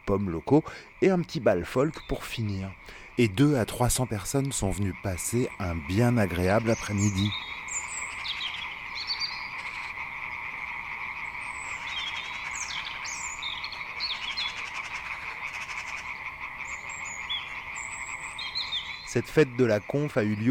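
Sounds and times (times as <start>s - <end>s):
frogs croaking at a wetland of former fish ponds in spring: 0.0s - 20.4s
speech: 0.1s - 7.6s, 19.2s - 20.4s
high bird chirps: 6.4s - 9.9s, 11.3s - 19.2s.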